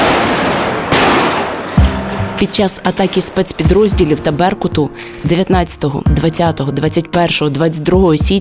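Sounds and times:
stun grenade explosions: 0.0 - 5.3
speech: 2.4 - 8.3.

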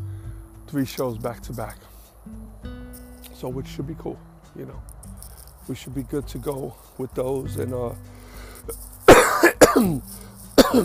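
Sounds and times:
speech: 0.7 - 2.4, 3.4 - 4.9, 5.6 - 8.9, 9.7 - 10.8
person coughing from dust in the air: 9.1 - 10.0, 10.6 - 10.8.

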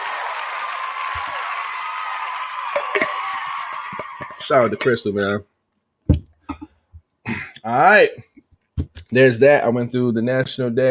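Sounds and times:
crowd applause: 0.0 - 4.9
speech: 4.5 - 5.5, 7.6 - 8.3, 9.1 - 10.8.

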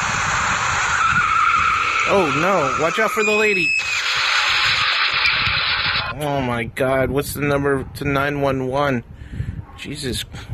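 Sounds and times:
driverless autonomous ride-hail car tires skidding: 0.1 - 6.1
speech: 2.1 - 3.8, 6.2 - 9.1, 9.8 - 10.5.

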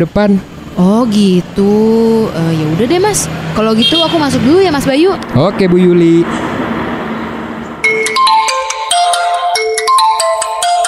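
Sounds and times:
speech: 0.0 - 6.5
phone ringtone melody for an incoming call: 7.8 - 10.8.

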